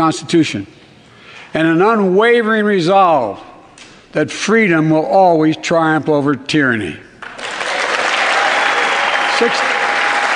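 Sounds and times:
speech: 0.0s - 0.8s, 1.5s - 3.5s, 4.1s - 7.1s, 9.4s - 9.6s
audience applause: 7.2s - 10.3s.

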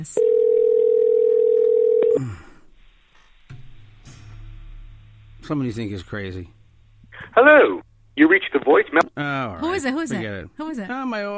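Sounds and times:
speech: 0.0s - 0.4s, 2.2s - 2.5s, 5.5s - 6.6s, 7.4s - 11.3s
telephone dial tone while placing an outgoing call: 0.2s - 2.2s
quiet telephone line noise: 1.5s - 10.5s.

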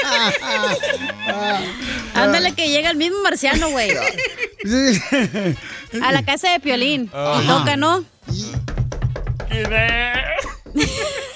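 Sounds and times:
people laughing: 0.0s - 2.5s, 3.5s - 6.4s, 10.2s - 11.3s
speech: 0.2s - 8.5s, 9.6s - 10.9s
sharp knocks on a door: 8.6s - 11.1s.

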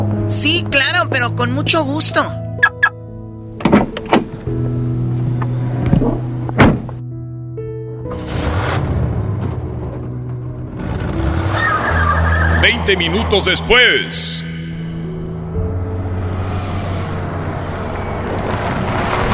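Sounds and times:
car engine humming as the car drives off: 0.0s - 7.1s, 8.0s - 19.3s
speech: 0.3s - 2.4s, 12.8s - 14.6s
rushing road noise: 2.6s - 7.0s, 8.1s - 19.3s
car doors thunking: 3.5s - 7.0s.

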